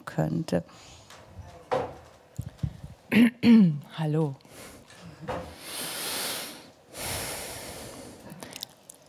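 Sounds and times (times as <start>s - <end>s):
speech: 0.1s - 1.0s, 3.1s - 5.5s
heavy breathing: 4.4s - 8.7s.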